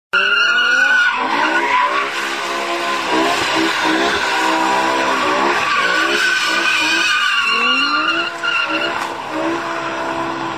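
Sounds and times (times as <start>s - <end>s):
tuned car tires squealing during a burnout at a gas station: 0.1s - 10.5s
tuned car engine revving: 0.2s - 10.5s.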